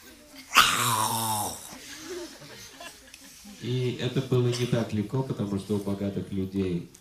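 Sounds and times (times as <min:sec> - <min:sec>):
person imitating guard dogs barking: 0:00.5 - 0:01.8
speech: 0:03.6 - 0:06.9.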